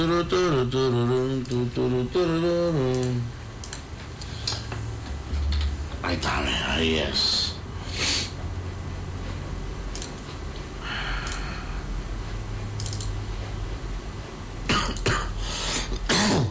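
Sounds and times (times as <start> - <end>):
speech: 0.0 - 3.4, 6.0 - 7.4
low steady hum: 0.0 - 16.2
faint clicks: 1.4 - 1.7, 2.9 - 4.6, 9.9 - 10.2, 11.2 - 11.5
person with a lingering cough giving a harsh barking cough: 14.7 - 16.5.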